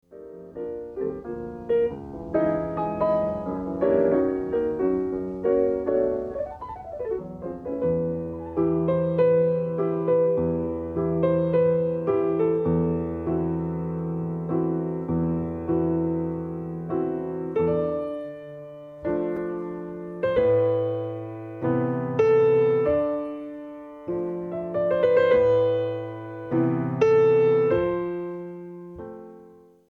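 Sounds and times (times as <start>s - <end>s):
piano bar medley: 0.0s - 29.8s.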